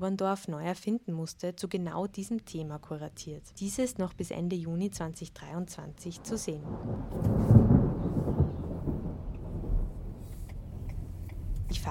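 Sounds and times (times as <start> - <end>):
speech: 0.0 - 8.4
deep rolling rumble of thunder: 6.2 - 11.8
steady rain hissing: 6.2 - 11.8.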